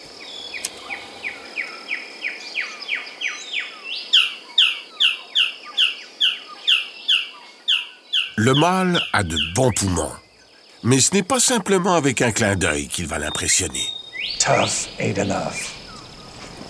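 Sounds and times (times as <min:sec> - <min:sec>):
insects hissing: 0:00.0 - 0:07.3, 0:08.2 - 0:16.6
male blue bird-of-paradise calling while seeking a mate: 0:04.2 - 0:16.6
speech: 0:08.4 - 0:10.2, 0:10.8 - 0:15.8.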